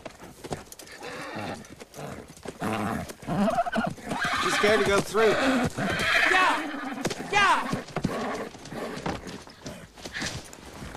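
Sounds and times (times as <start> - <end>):
hooves of a wild black Mustang mare clattering through a corral gate: 0.0 - 10.9
wild black Mustang mare whinnying: 0.9 - 9.4
speech: 4.6 - 6.2.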